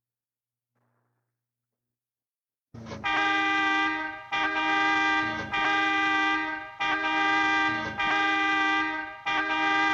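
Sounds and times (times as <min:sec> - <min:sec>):
loud brassy horn blasts: 0:02.9 - 0:09.9.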